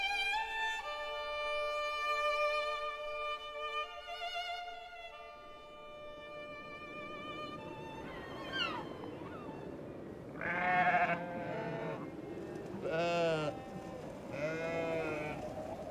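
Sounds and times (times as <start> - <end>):
low outdoor background: 0.0 - 15.8
sheep bleating on a sea dike: 10.4 - 12.0, 12.8 - 13.6, 14.3 - 15.4.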